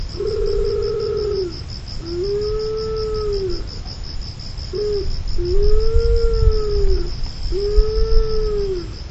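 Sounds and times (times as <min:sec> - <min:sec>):
karasubato pigeon call: 0:00.1 - 0:03.8, 0:04.7 - 0:08.9.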